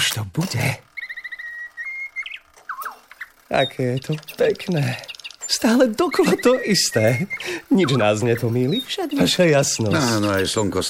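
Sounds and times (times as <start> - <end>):
speech: 0.2 - 0.9, 3.5 - 10.8
nightingale singing: 1.0 - 9.2.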